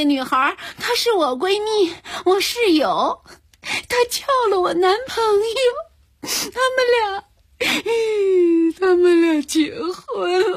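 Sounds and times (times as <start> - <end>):
speech: 0.0 - 10.5
person crying in wailing sobs: 7.6 - 9.2, 10.1 - 10.5.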